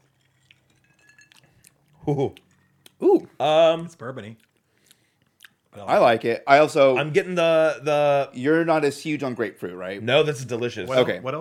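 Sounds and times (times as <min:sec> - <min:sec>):
cocktail glasses clinking in a toast: 0:00.0 - 0:01.6
quiet hum: 0:00.0 - 0:08.7
speech: 0:02.1 - 0:04.5, 0:05.8 - 0:11.3.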